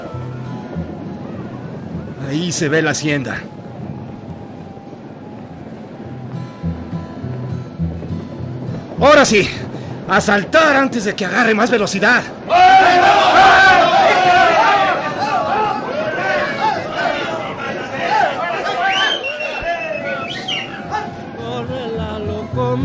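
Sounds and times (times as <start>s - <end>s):
speech: 2.2s - 3.6s, 9.1s - 13.6s
crowd of guerrilla fighters shouting battle cries: 12.3s - 21.4s.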